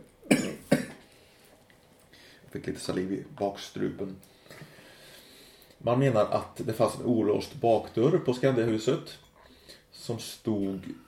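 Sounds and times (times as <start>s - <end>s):
sharp harsh coughs: 0.3s - 1.0s
speech: 2.5s - 4.4s, 5.8s - 11.0s.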